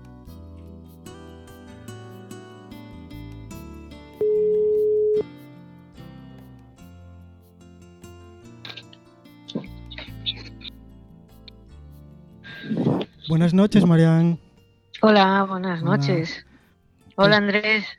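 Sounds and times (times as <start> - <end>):
steady electronic tone of a telephone call being placed: 4.2 - 5.3
speech: 13.3 - 14.4, 15.0 - 16.5, 17.2 - 17.9.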